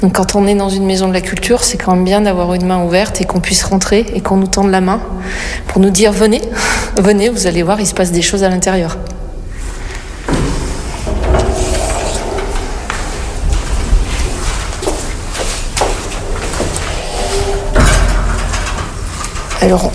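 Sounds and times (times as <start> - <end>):
speech: 0.0 - 9.1, 19.7 - 19.9
busy indoor noise: 0.0 - 19.9
door slamming in a cultural centre: 10.3 - 14.0, 16.4 - 19.0.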